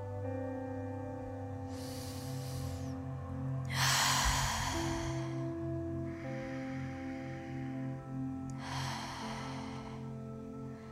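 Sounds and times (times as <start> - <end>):
soft steady tonal music bed: 0.0 - 10.9
slow airy inhale: 1.5 - 10.9.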